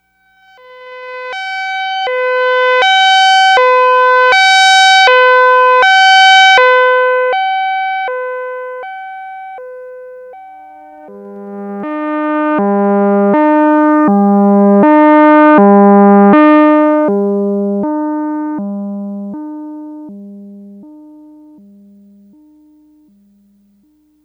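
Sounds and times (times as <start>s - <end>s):
Yamaha DX100 synthesizer Doppler effect factory patch: 0.8s - 18.6s.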